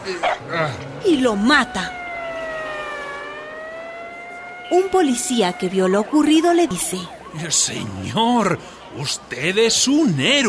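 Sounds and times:
speech: 0.0 - 2.0, 4.7 - 10.4
dog barking: 0.2 - 0.5.

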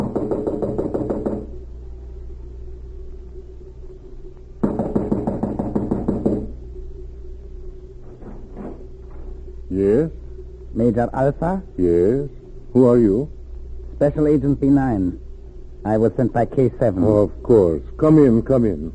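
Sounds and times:
brisk rapid knocking on a wooden cottage door: 0.0 - 1.5, 4.6 - 6.5
speech: 10.9 - 13.4, 14.0 - 15.2, 15.8 - 18.9.

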